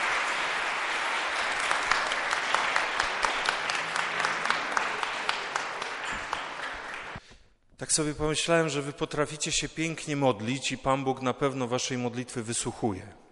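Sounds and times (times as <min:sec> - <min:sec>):
audience applause: 0:00.0 - 0:07.2
speech: 0:07.8 - 0:13.2.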